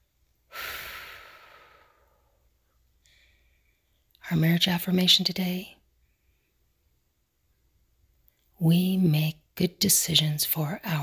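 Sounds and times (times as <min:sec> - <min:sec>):
deep breath in and out: 0:00.5 - 0:03.9
speech: 0:04.3 - 0:05.8, 0:08.7 - 0:11.0.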